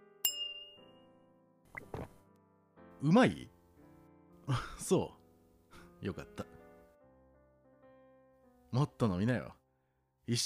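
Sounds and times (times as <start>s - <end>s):
glasses clinking in a toast: 0.2s - 0.9s
speech: 3.0s - 3.5s, 4.5s - 5.2s, 6.0s - 6.6s, 8.7s - 9.6s, 10.3s - 10.4s.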